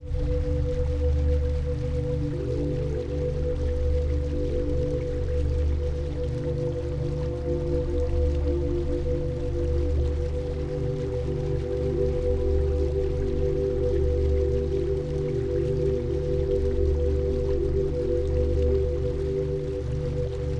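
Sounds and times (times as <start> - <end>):
flowing water stream: 0.0 - 20.5.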